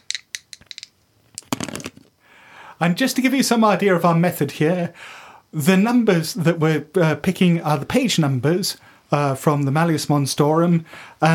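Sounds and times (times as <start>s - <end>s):
dice rolled in a cup or across a hard surface: 0.0s - 2.1s
speech: 2.8s - 11.3s.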